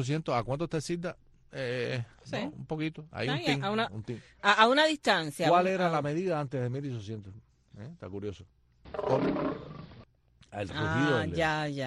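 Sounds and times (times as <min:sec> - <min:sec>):
speech: 0:00.0 - 0:09.6, 0:10.5 - 0:11.8
lion roaring: 0:08.9 - 0:10.0.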